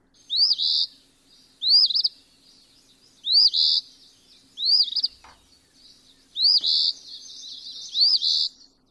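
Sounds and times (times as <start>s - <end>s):
phoebe calling fee-bee: 0.3s - 1.0s, 1.6s - 2.2s, 3.2s - 8.6s.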